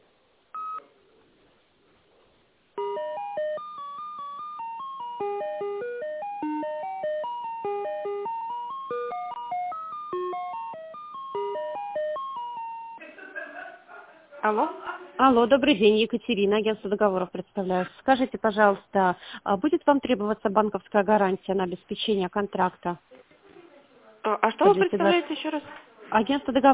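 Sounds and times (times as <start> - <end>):
telephone keypad dialing tones: 2.8 - 13.0
laughter: 13.0 - 14.3
speech: 14.5 - 23.1, 24.3 - 26.7.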